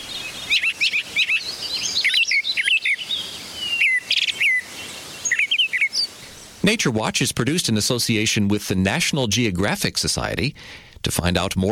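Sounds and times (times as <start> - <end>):
birdsong with chirps and trills: 0.0 - 6.8
soft hiss: 0.0 - 11.7
speech: 6.6 - 11.7.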